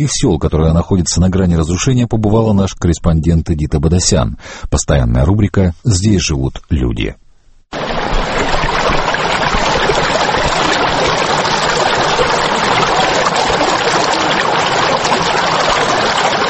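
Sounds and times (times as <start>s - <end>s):
speech: 0.0s - 8.1s
fast mountain river in Georgia rushing: 7.7s - 16.4s.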